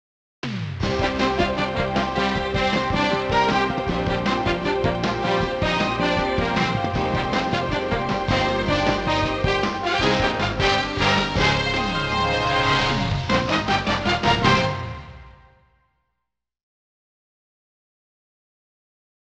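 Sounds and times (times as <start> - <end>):
opening music: 0.5 - 15.6.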